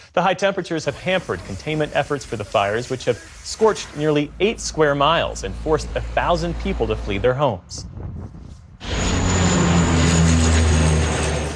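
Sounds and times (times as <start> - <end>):
speech: 0.2 - 8.4
low-flying water-dumping firefighting plane engine roaring: 3.8 - 11.5.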